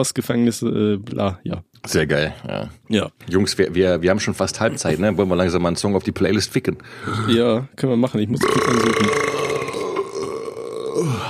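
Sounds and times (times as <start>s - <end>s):
speech: 0.0s - 9.4s
long drawn-out burp: 8.4s - 11.2s.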